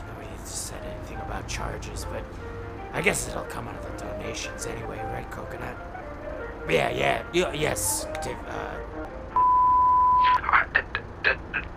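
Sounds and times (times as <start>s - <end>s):
speech: 1.3s - 5.9s, 6.6s - 9.2s
prison phone call connection beep: 9.4s - 10.4s.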